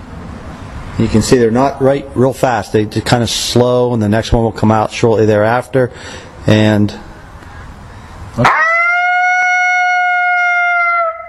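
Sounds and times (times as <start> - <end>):
speech: 1.0 - 7.1, 8.4 - 8.6
imitated lonesome howl call: 8.4 - 11.2.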